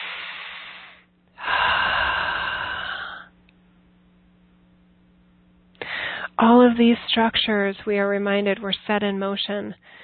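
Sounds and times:
breathy exhale: 0.0s - 3.3s, 5.8s - 6.3s
deep inhale: 0.0s - 3.3s, 5.8s - 6.4s, 9.8s - 10.0s
speech: 6.4s - 10.0s.

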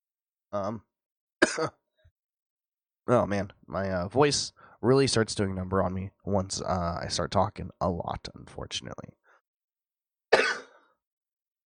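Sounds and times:
speech: 0.5s - 0.9s, 1.5s - 1.8s, 3.1s - 9.2s
person coughing: 1.4s - 1.8s, 10.3s - 11.0s
throat clearing: 1.4s - 1.8s.

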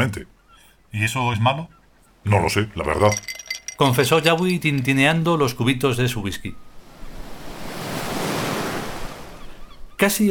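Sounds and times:
speech: 0.0s - 6.6s, 10.0s - 10.3s
ocean waves crashing: 2.2s - 10.0s.

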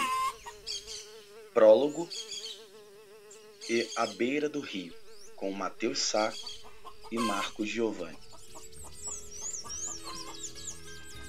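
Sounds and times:
high chirping birds: 0.0s - 11.2s
speech: 1.6s - 2.3s, 3.7s - 6.5s, 7.1s - 8.2s
hen clucking: 5.3s - 10.8s.

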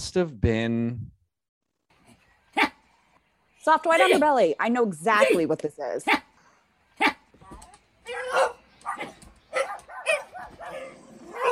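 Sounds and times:
speech: 0.0s - 1.2s, 3.6s - 6.3s
dog barking: 2.6s - 2.8s, 6.0s - 6.3s, 7.0s - 7.2s, 8.1s - 11.5s.

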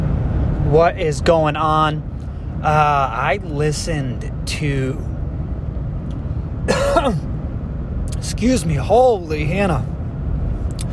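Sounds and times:
steady low rumble: 0.0s - 10.9s
speech: 0.7s - 5.1s, 6.7s - 7.3s, 8.2s - 9.9s
single short raspy cough: 6.7s - 7.2s.

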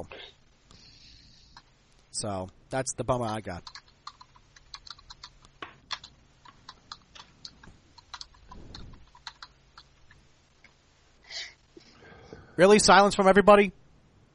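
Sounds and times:
speech: 2.2s - 3.8s, 12.6s - 13.8s
computer keyboard typing: 3.6s - 10.2s.

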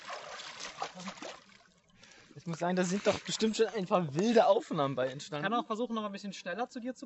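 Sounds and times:
soft continuous splashing and trickling water: 0.0s - 4.7s
speech: 1.0s - 1.3s, 2.4s - 7.0s.

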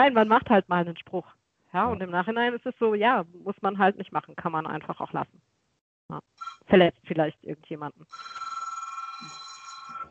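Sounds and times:
speech: 0.0s - 5.5s, 6.1s - 8.5s
faint low noise: 0.0s - 9.0s
telephone ringing with a bright electronic trill: 6.4s - 6.7s, 8.1s - 10.0s.

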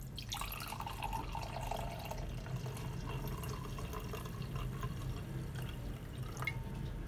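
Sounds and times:
wine from a screw-top bottle glugging into a glass: 0.0s - 6.9s.

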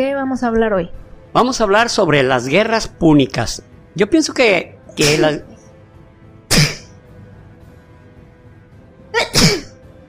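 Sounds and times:
speech: 0.0s - 5.5s
person sneezing: 6.5s - 7.0s, 9.1s - 9.8s.

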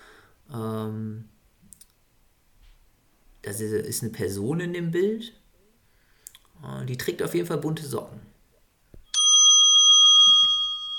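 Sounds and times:
speech: 3.4s - 5.4s, 6.6s - 8.3s
bright quiz buzzer bell ringing with a metallic tone: 9.1s - 10.9s.

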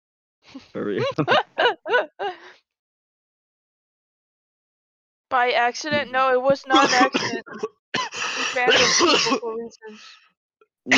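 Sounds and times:
speech: 0.5s - 2.3s, 5.3s - 10.2s
laughter: 0.8s - 2.4s, 6.5s - 9.3s
person coughing into the microphone: 6.7s - 9.6s
throat clearing: 6.8s - 9.4s.

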